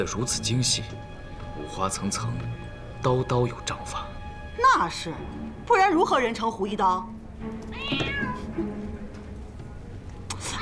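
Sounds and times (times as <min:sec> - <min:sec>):
speech: 0:00.0 - 0:08.8
single drawn-out cat meow: 0:07.7 - 0:08.5.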